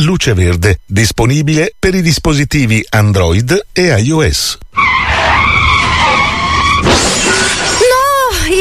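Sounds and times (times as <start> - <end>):
speech: 0.0 - 4.6
wavering squeal of car settling: 4.7 - 8.1.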